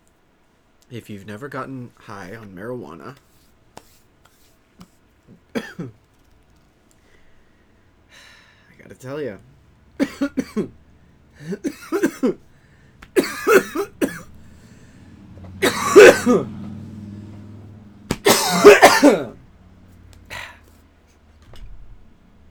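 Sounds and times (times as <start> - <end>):
speech: 0.9 - 3.3, 5.8 - 6.0, 9.0 - 9.5, 10.2 - 10.8, 11.4 - 12.5, 16.0 - 16.6, 19.0 - 19.3
person with Lyme disease coughing: 5.5 - 5.9, 10.0 - 10.8, 11.4 - 12.4, 13.0 - 14.4, 15.4 - 16.8, 17.6 - 19.4.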